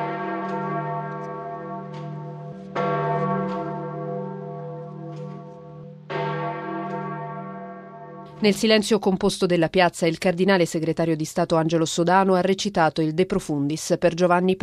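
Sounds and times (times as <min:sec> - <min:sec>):
large church bells ringing a peal marking the death of a pope: 0:00.0 - 0:08.8
speech: 0:08.4 - 0:14.6.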